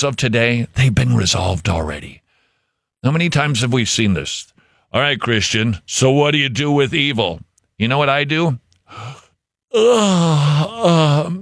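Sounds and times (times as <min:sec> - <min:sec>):
speech: 0:00.0 - 0:02.2, 0:03.0 - 0:11.4
short breathy intake of breath: 0:02.3 - 0:02.9, 0:08.9 - 0:09.4
loud drawn-out exaggerated yawn with moaning tone: 0:08.9 - 0:11.4.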